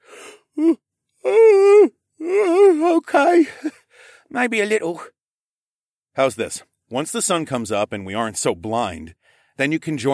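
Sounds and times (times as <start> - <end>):
person imitating a huge yawn: 0.0 - 3.7
speech: 0.6 - 0.8, 4.4 - 5.2, 6.2 - 10.1.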